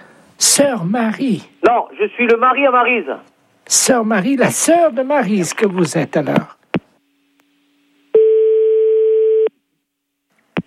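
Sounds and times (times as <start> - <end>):
speech: 0.4 - 6.6
telephone line tone after a cut-off call: 8.2 - 9.5.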